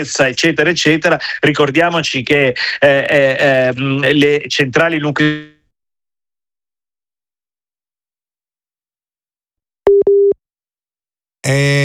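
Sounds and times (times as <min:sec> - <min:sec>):
speech: 0:00.0 - 0:05.5, 0:11.5 - 0:11.8
electronic beeps of a telephone busy signal: 0:09.9 - 0:10.4.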